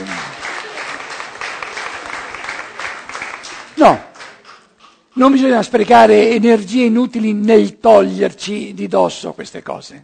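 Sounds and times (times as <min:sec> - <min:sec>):
group of people applauding: 0:00.0 - 0:06.4
speech: 0:03.8 - 0:04.0, 0:05.2 - 0:10.0.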